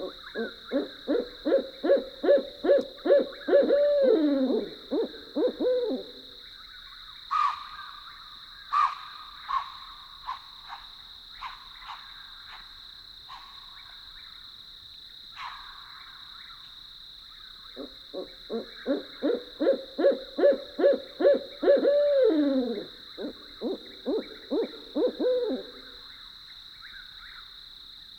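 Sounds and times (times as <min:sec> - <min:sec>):
owls hooting outside tents at a campground at night: 0:00.0 - 0:06.3, 0:17.8 - 0:26.0
high insect-like drone at night: 0:00.0 - 0:28.1.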